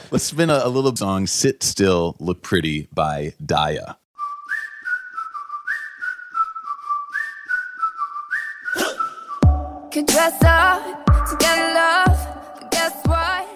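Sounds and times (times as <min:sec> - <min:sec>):
speech: 0:00.1 - 0:04.0, 0:10.0 - 0:11.4
whistled melody: 0:04.2 - 0:10.7
pop music with thumping beat: 0:08.8 - 0:13.5.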